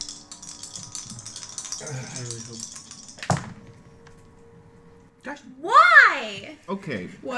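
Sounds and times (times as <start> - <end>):
dice rattling across a hard tabletop: 0.0 - 3.6
speech: 1.8 - 2.8, 5.2 - 7.3.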